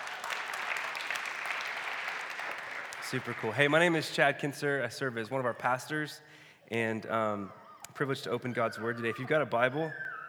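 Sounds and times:
church audience applauding: 0.0s - 4.0s
speech: 3.1s - 10.0s.

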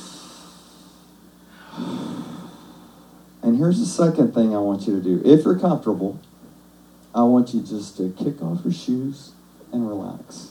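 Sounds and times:
people taking a deep breath and letting it out as a relaxation exercise: 0.0s - 3.2s
speech: 3.5s - 6.3s, 7.1s - 10.4s.

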